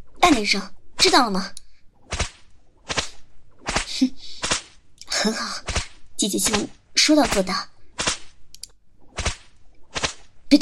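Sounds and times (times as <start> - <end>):
speech: 0.3 - 1.6, 4.0 - 4.3, 5.2 - 7.7
whip lashes cracking: 2.1 - 4.8, 5.6 - 8.4, 9.1 - 10.4.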